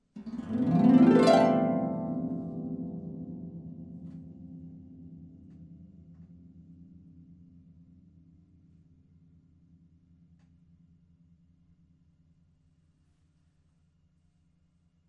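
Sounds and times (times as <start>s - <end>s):
harp: 0.2s - 7.2s.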